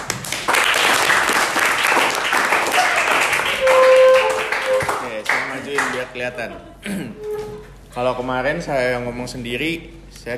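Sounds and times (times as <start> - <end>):
audience applause: 0.0 - 6.0
audience whistles and cheers: 2.7 - 5.0
speech: 6.3 - 7.3, 8.0 - 10.3.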